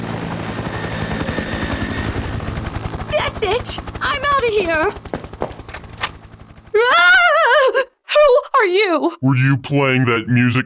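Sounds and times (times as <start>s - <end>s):
helicopter flying overhead with rotor chopping and engine roar: 0.0s - 7.8s
speech: 3.4s - 5.1s, 8.6s - 10.6s.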